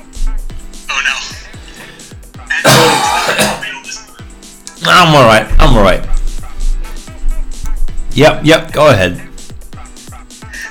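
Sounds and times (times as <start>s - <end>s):
music: 0.0s - 10.6s
person clearing throat: 2.6s - 3.8s
person coughing after something went down the wrong way: 2.6s - 3.8s
speech: 5.0s - 6.2s, 8.2s - 9.2s.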